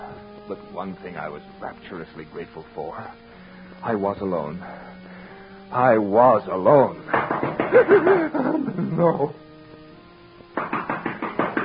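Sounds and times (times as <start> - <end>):
faint hum: 0.0 - 11.6
speech: 0.5 - 5.0, 5.7 - 9.5
firm knocking on a wooden door: 7.1 - 7.9, 10.5 - 11.6
laughter: 7.1 - 9.4.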